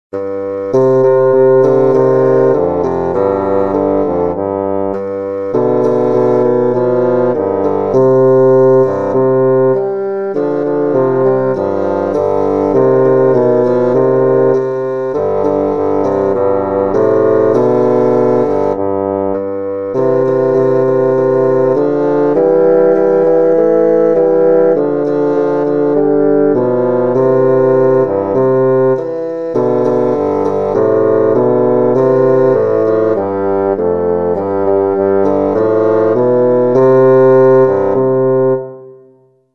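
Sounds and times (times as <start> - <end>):
bassoon playing a tango: 0.1 - 39.4.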